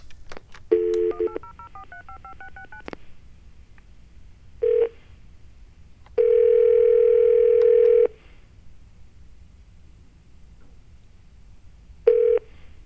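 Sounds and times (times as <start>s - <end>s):
long steady telephone tone: 0.7s - 2.9s, 4.6s - 5.0s, 6.2s - 8.1s, 12.1s - 12.5s
touch-tone telephone keypad beeps dialing a toll-free hotline number: 0.8s - 2.9s.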